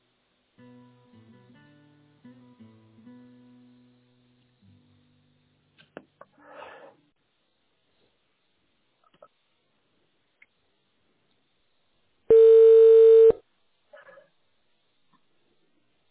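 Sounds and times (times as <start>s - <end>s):
steady electronic telephone tone while a call is transferred: 12.3s - 13.4s.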